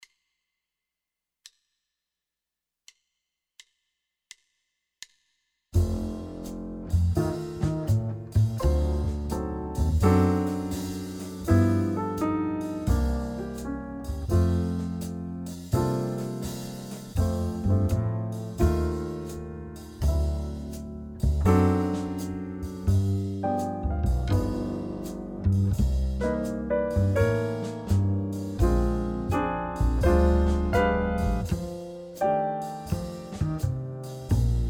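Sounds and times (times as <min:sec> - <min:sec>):
medium swing jazz wind instruments: 0:05.8 - 0:34.6.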